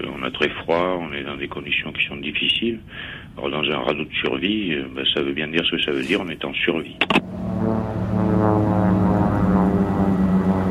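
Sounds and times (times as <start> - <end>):
speech: 0.0 - 7.8
Australian rescue propeller aircraft droning overhead above the stormy Southern Ocean: 7.2 - 10.6.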